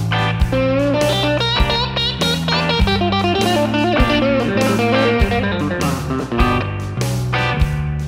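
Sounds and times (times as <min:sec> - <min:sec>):
guitar lick: 0:00.1 - 0:08.0.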